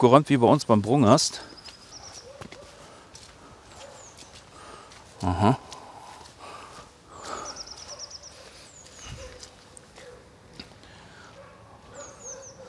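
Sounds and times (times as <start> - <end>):
speech: 0.0 - 1.6, 5.2 - 5.7
high quick birdsong trills: 0.4 - 5.0, 7.1 - 9.9, 11.9 - 12.6
dogs barking excitedly outdoors among felled tree trunks: 2.0 - 3.0, 3.7 - 4.3, 7.4 - 10.4, 11.3 - 12.6.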